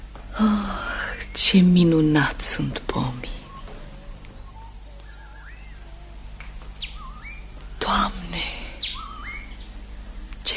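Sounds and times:
starlings singing: 0.0 - 10.5
steady low hum: 0.0 - 10.5
speech: 0.4 - 0.8, 1.4 - 3.4.

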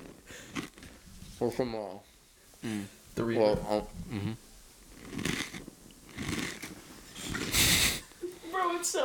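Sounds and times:
person chewing small goldfish crackers: 0.0 - 1.0, 4.8 - 7.6
speech: 1.4 - 4.5.

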